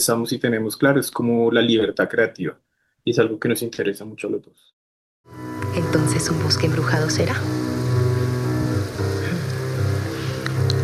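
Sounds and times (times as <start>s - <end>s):
speech: 0.0s - 7.6s
low droning undertone: 5.4s - 10.8s
rain falling in a forest: 6.0s - 10.8s.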